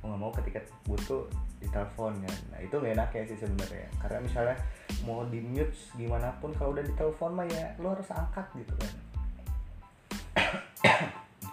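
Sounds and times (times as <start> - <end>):
speech: 0.2 - 9.1
person coughing: 10.4 - 11.3.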